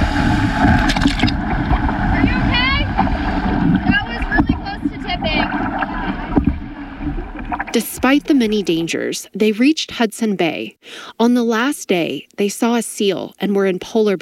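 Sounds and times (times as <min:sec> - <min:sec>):
canoe paddled hard through large waves on Lake Winnipeg: 0:00.0 - 0:09.0
gusts of wind buffeting the microphone: 0:00.0 - 0:09.0
rough choppy water splashing and sloshing: 0:00.0 - 0:09.2
speech: 0:00.5 - 0:01.2, 0:08.1 - 0:14.2.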